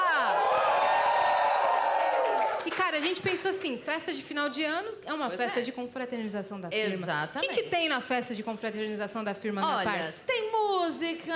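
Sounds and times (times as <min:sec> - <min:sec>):
live crowd shouting and cheering with whoops: 0:00.0 - 0:02.8
speech: 0:02.8 - 0:11.3.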